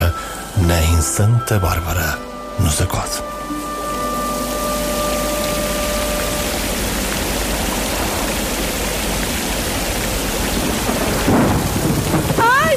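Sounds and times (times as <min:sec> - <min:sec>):
dense rain hissing in a heavy thunderstorm: 0:00.0 - 0:12.7
speech: 0:00.6 - 0:03.4
deep thunder rumbling in a heavy thunderstorm: 0:06.6 - 0:12.7.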